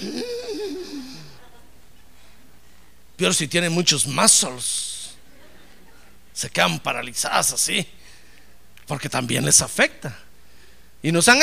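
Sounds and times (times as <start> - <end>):
imitated swooning gasp: 0.0 - 1.4
speech: 3.2 - 4.9, 6.4 - 8.0, 8.9 - 10.2, 11.0 - 11.4.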